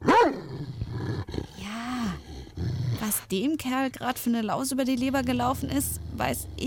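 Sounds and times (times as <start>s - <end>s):
grumpy bad-tempered dog growling and snarling: 0.0s - 3.3s, 4.9s - 6.6s
speech: 3.2s - 6.6s.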